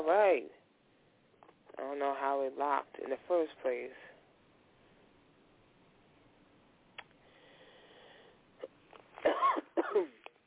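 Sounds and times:
speech: 0.1 - 0.6, 1.8 - 4.1
person coughing: 8.6 - 10.3.

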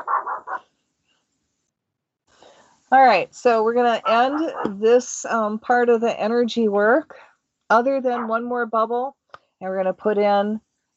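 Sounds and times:
dog barking at night: 0.0 - 0.6, 4.1 - 4.7
speech: 2.9 - 10.7.

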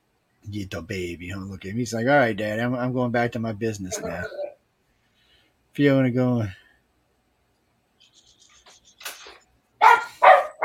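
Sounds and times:
speech: 0.5 - 4.4, 5.8 - 6.6
dog barking: 9.8 - 10.6.

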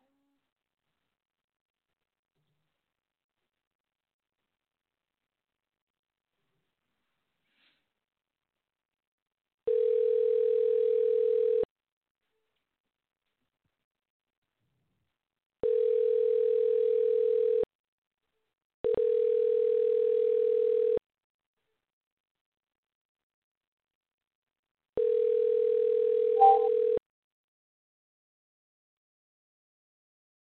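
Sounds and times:
telephone ringback tone on an outgoing call: 9.7 - 11.7, 15.6 - 17.6, 19.0 - 21.0, 25.0 - 27.0.

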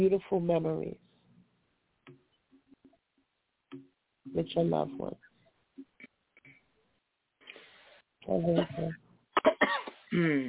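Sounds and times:
speech: 0.0 - 1.1, 3.7 - 5.3, 8.2 - 10.4
person coughing: 8.6 - 10.4.

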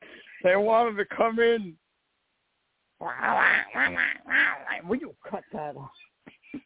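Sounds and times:
speech: 0.4 - 1.8, 3.0 - 6.0
raspy buzzing cartoon duck voice quacking: 3.0 - 5.0.

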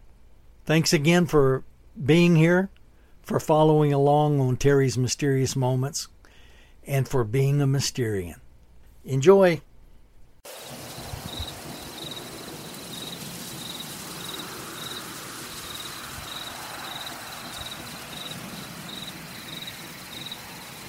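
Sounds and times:
speech: 0.7 - 6.2, 6.8 - 8.4, 9.0 - 9.7
crickets and other insects in a forest at night: 10.5 - 20.8.

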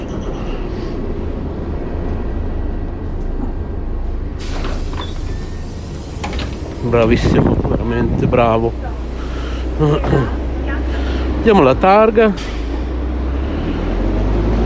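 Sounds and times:
city bus engine rumbling: 0.0 - 14.6
bright hissing burst of pneumatic sliding doors: 4.4 - 6.7
speech: 6.8 - 9.0, 9.8 - 10.4, 11.4 - 12.6.

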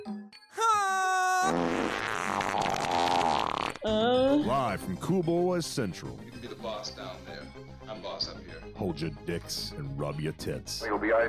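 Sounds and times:
farts: 1.5 - 4.0
speech: 3.8 - 11.2.

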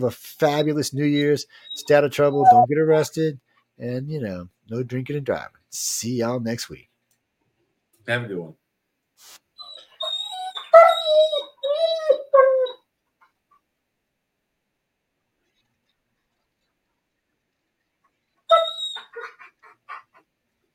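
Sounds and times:
speech: 0.0 - 6.9, 8.0 - 8.6
puppy howling and whining along to music: 10.2 - 12.8, 18.5 - 19.3.

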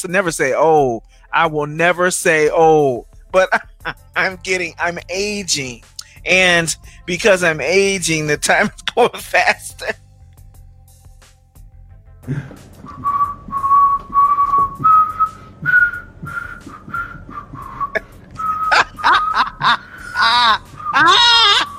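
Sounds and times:
speech: 0.0 - 10.0, 12.2 - 13.2, 19.6 - 21.3
laughter: 3.4 - 4.4, 18.0 - 21.7
person whistling a melody: 12.3 - 21.7.

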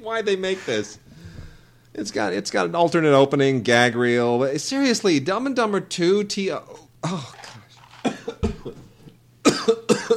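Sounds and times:
speech: 0.0 - 1.0, 2.0 - 7.4
faint steady hum: 0.0 - 10.1
person coughing: 7.0 - 7.4, 8.0 - 8.8, 9.4 - 10.1.

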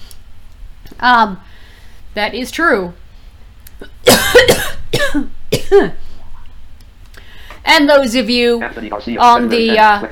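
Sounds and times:
speech: 1.0 - 3.0, 4.1 - 6.0, 7.7 - 10.1
person coughing: 3.8 - 6.0.

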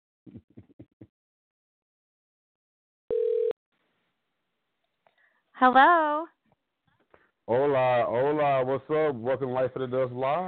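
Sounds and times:
electronic telephone ring tone on the line: 3.1 - 3.6
speech: 5.6 - 6.4, 7.5 - 10.4.

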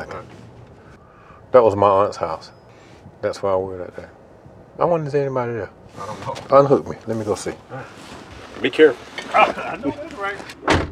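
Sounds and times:
speech: 1.5 - 2.6, 3.2 - 4.2, 4.8 - 10.9
truck door shutting as a passenger gets out: 10.4 - 10.9.

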